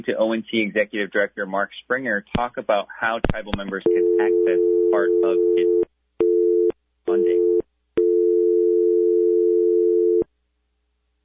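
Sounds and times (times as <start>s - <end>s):
speech: 0.0s - 5.9s
telephone tone after a caller hung up: 3.9s - 10.2s.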